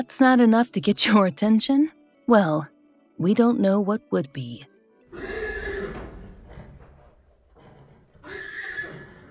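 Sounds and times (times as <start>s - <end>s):
speech: 0.0s - 5.3s
horse neighing: 5.1s - 9.3s.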